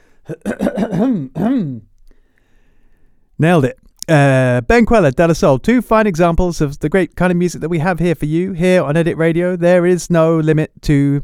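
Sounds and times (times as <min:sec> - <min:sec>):
exaggerated throat clearing: 0:00.3 - 0:01.9
speech: 0:01.0 - 0:01.9, 0:03.4 - 0:11.2.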